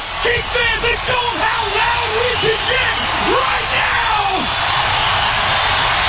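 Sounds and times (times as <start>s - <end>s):
huge arena crowd screaming and yelling in a large space: 0.0s - 6.0s
individual shouts and whoops from the arena crowd: 0.2s - 4.7s.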